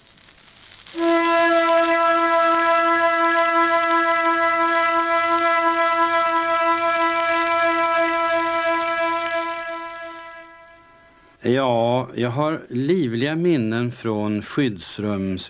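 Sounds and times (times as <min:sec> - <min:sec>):
air raid all-clear siren: 0:00.9 - 0:11.4
speech: 0:11.5 - 0:15.4.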